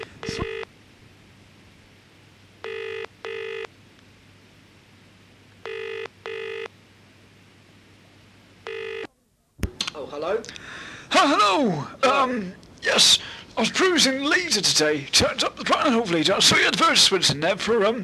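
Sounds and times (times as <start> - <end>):
telephone ringing tone in double bursts: 0.0 - 0.7, 2.6 - 3.7, 5.6 - 6.7, 8.6 - 9.1
faint low hum: 0.0 - 18.0
speech: 10.1 - 18.0.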